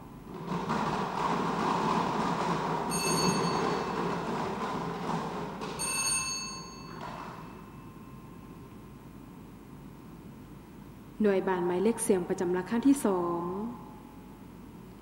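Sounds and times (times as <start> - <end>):
lottery number drum spinning at a numbers draw: 0.0 - 7.9
bell-like ringing tones: 2.9 - 4.2, 5.8 - 8.7
speech: 11.2 - 13.8.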